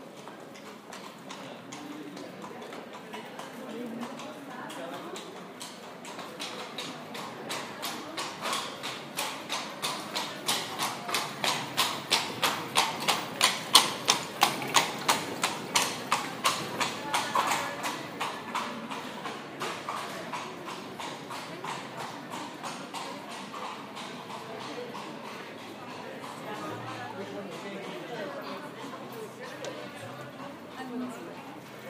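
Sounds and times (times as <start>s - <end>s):
loaded ridden horse hooves trotting off a boat onto land: 0.2s - 31.7s.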